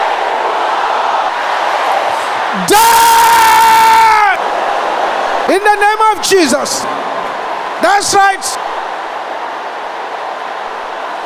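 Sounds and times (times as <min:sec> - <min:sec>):
large crowd shouting in unison: 0:00.0 - 0:05.6, 0:06.5 - 0:11.2
speech: 0:02.7 - 0:03.1, 0:06.1 - 0:07.0, 0:07.8 - 0:08.7.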